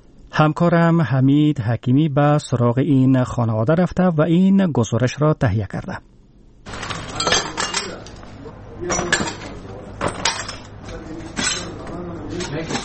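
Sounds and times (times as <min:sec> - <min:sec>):
low steady hum: 0:00.0 - 0:12.8
speech: 0:00.3 - 0:06.1
broken glass pieces clinking and scraping as they are gathered in a rocket-damaged house in Kabul: 0:06.7 - 0:08.2, 0:08.8 - 0:10.8, 0:11.4 - 0:11.8.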